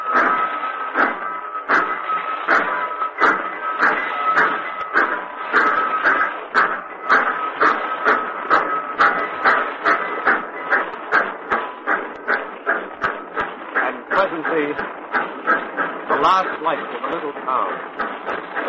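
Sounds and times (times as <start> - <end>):
train rolling along the rails: 0.0 - 18.6.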